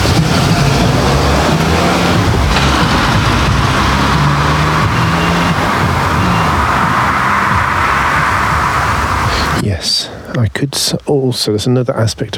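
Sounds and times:
cars rumbling and swishing past on a road: 0.0s - 9.6s
speech: 10.6s - 12.3s.

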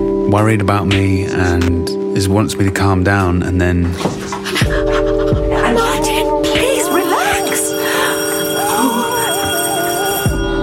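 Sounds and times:
speech: 0.3s - 5.0s
laughter: 4.0s - 9.5s
doorbell chiming: 6.0s - 10.6s.

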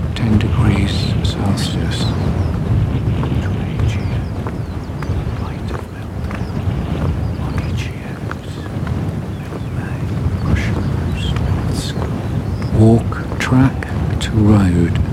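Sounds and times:
curlew calling: 0.0s - 14.9s
moderate southeasterly wind rumble outdoors: 0.0s - 15.1s
skylark singing: 0.0s - 15.1s.

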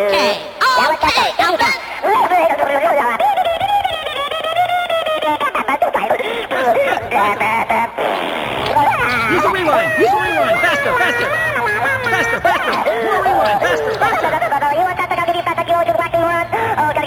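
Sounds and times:
laughter: 0.0s - 17.0s
radio caller's helium-altered voice quacking like a duck: 6.3s - 15.6s.

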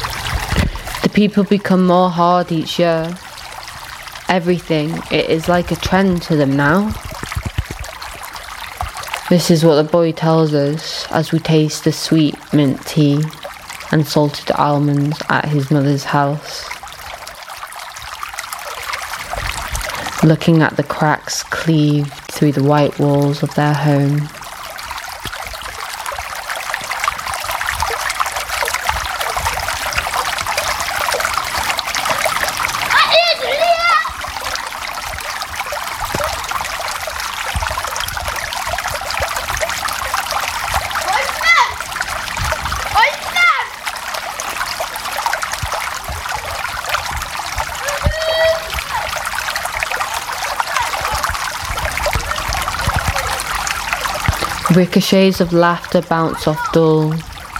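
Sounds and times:
water pouring and splashing onto a hard tiled floor: 0.0s - 57.5s
speech: 1.1s - 3.2s, 4.3s - 7.0s, 9.3s - 16.8s, 20.2s - 24.4s, 54.8s - 57.3s.

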